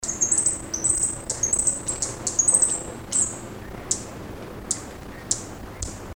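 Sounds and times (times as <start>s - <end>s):
Fire-breasted Flowerpecker birdcall: 0.0s - 6.1s.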